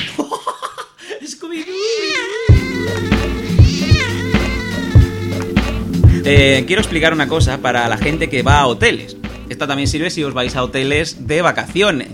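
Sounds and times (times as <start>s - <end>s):
person imitating cat meowing: 1.7s - 5.3s
upbeat music with steady thumping beat: 2.5s - 12.1s
speech: 6.3s - 12.1s.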